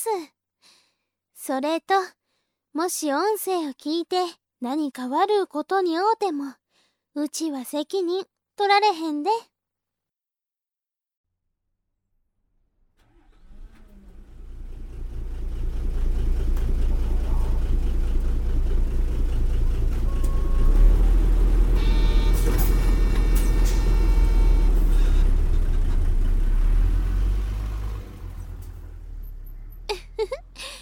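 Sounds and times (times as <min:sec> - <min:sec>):
speech: 0:00.0 - 0:00.4, 0:01.4 - 0:02.2, 0:02.8 - 0:06.6, 0:07.2 - 0:09.5
bus arriving and stopping, engine rumbling: 0:13.1 - 0:30.8.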